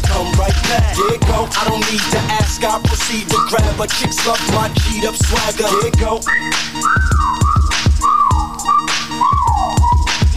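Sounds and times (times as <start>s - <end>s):
steady thumping beat: 0.0s - 10.3s
speech: 0.7s - 7.4s
sliding descending whistled notes: 3.0s - 10.3s.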